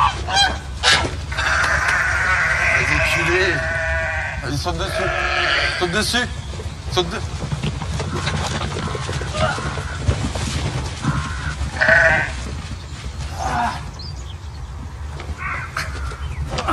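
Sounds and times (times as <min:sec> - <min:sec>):
scuffling: 0:00.0 - 0:16.7
sheep bleating: 0:01.3 - 0:06.1, 0:11.0 - 0:12.4.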